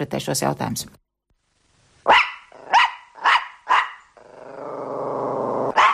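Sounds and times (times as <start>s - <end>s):
speech: 0.0s - 1.0s
dog barking: 2.1s - 4.1s, 5.7s - 5.9s
dog growling: 2.5s - 3.3s, 4.2s - 5.8s.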